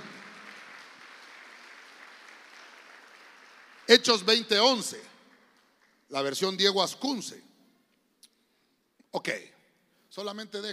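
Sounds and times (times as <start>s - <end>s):
audience applauding at a Christian church service: 0.0s - 6.2s
speech: 3.9s - 5.1s, 6.1s - 7.5s, 9.2s - 10.7s.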